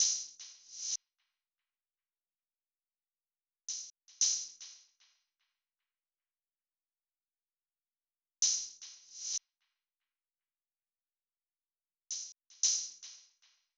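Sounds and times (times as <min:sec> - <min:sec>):
open hi-hat drum loop: 0:00.0 - 0:01.0, 0:03.7 - 0:05.0, 0:08.4 - 0:09.4, 0:12.1 - 0:13.4.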